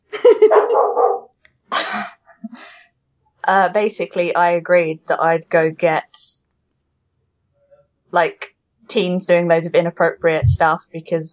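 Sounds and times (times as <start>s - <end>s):
dog barking: 0.4s - 1.3s
speech: 3.5s - 6.4s, 8.1s - 11.3s.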